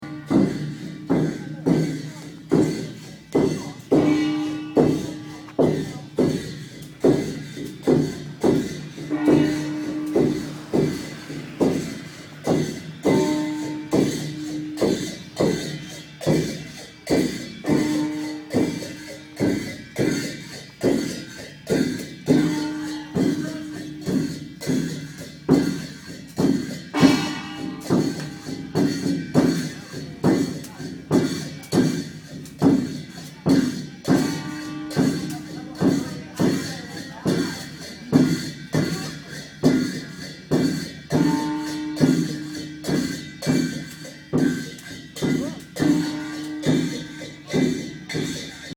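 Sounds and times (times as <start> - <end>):
monks drumming: 0.0 - 48.7.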